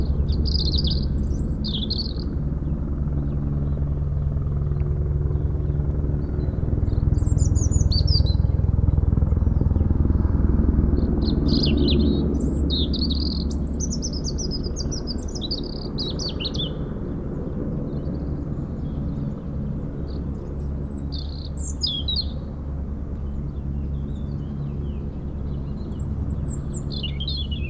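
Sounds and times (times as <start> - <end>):
European robin singing in a hedge near Lac du Bourget, France: 0.0 - 3.8, 6.2 - 9.9, 10.9 - 17.1, 20.0 - 22.5, 23.4 - 27.6
helicopter drone during lifting work for cliff repairs: 0.0 - 27.6.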